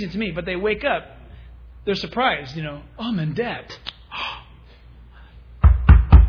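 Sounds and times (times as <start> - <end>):
speech: 0.0 - 1.2, 1.8 - 4.3
man knocking firmly on a door: 5.6 - 6.2.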